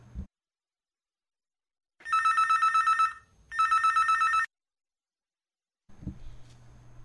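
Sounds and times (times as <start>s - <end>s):
telephone ringing for an incoming call: 2.0s - 4.5s.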